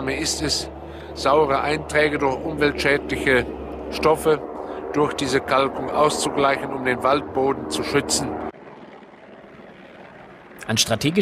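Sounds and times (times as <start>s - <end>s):
speech: 0.0s - 8.5s, 10.7s - 11.2s
helicopter engine with rotor flutter: 0.0s - 11.2s.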